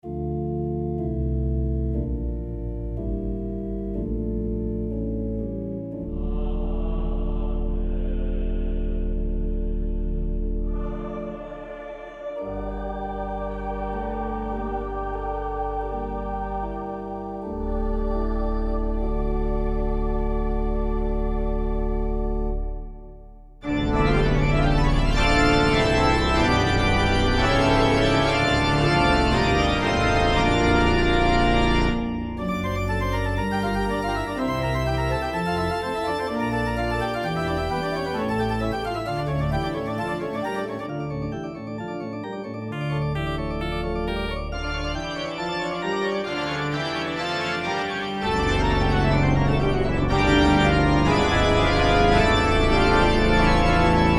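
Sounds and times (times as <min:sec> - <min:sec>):
pipe organ: 0:00.0 - 0:54.1.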